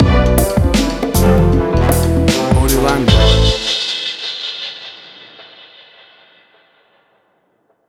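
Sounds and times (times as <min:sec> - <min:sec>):
upbeat orchestral hip hop stinger: 0:00.0 - 0:04.3.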